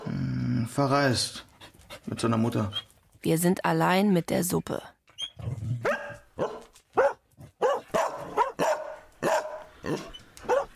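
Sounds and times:
speech: 0.7 - 1.5, 2.1 - 4.9
dogs yelping: 5.2 - 10.7
dogs barking: 5.8 - 10.7.

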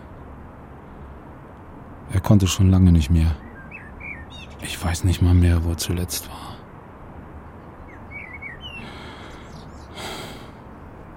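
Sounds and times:
blackbirds in a porch canopy chirping: 0.0 - 11.1
steady rushing noise: 0.0 - 11.1
speech: 2.1 - 3.4, 4.6 - 6.6
breathy burst: 8.8 - 10.7.

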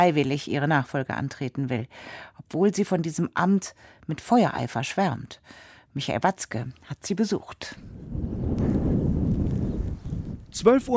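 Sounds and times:
speech: 0.0 - 8.8, 10.5 - 10.9
storm wind gusting through a small village at midday: 7.8 - 10.9.

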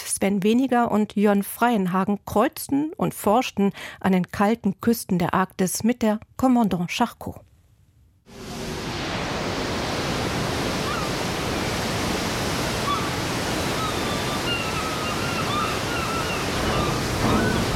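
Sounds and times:
speech: 0.2 - 7.5
water rushing and breaking against a ship's bow leaving Longyearbyen, Spitsbergen, in the Arctic: 8.8 - 17.7
gulls following the ship calling: 10.4 - 17.7.

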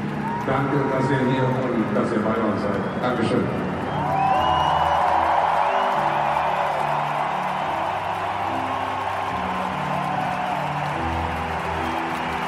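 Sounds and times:
large concert crowd in Munich roaring and cheering: 0.0 - 12.4
scattered whoops from concert crowd: 0.1 - 0.5, 3.8 - 12.4
speech: 0.5 - 4.2.

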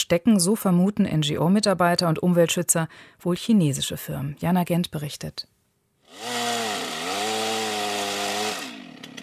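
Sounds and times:
speech: 0.1 - 5.5
chainsaw running during illegal tree felling in a northern Namibian forest: 6.0 - 9.2.

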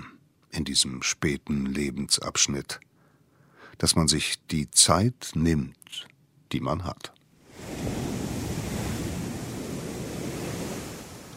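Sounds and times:
speech: 0.6 - 2.9, 3.8 - 7.7
ocean surf breaking onto a long beach: 7.4 - 11.3
wind noise: 7.5 - 11.3.

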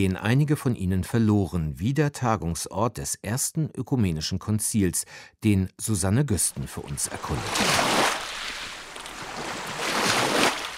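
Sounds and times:
speech: 0.0 - 8.2
small lake waves lapping on a pebble beach: 7.0 - 10.7.

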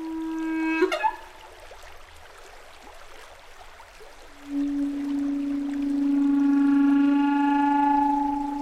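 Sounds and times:
sustained droning tone: 0.0 - 1.5, 4.3 - 8.5
flood water rushing in a stream with high slippery banks: 0.0 - 8.5.

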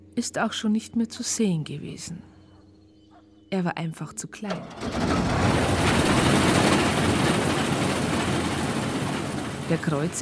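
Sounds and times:
speech: 0.2 - 2.3, 3.5 - 6.7, 9.7 - 10.1
large combine harvester engine starting and running: 4.5 - 10.1.

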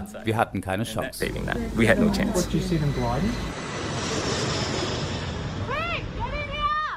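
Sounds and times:
speech: 0.1 - 3.6
firefighting airplane dropping red retardant roaring overhead: 1.2 - 6.7.

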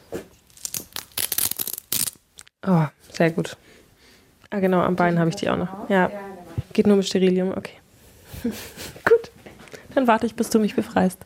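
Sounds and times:
adhesive tape being peeled off the skin at the hip: 0.4 - 2.5
speech: 2.6 - 3.8, 4.5 - 7.8, 8.4 - 9.0, 10.0 - 11.2.

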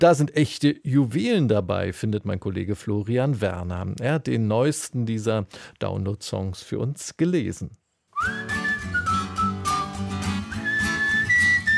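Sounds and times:
speech: 0.0 - 8.6
bright cheerful whistled melody: 8.2 - 11.7
briskly strummed acoustic guitar chords: 8.2 - 11.7.

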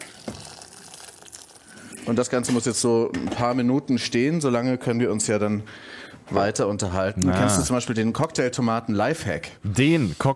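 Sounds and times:
boiling water from an electric kettle pouring over tomatoes in a heat-proof bowl: 0.0 - 2.4
speech: 2.1 - 10.3.

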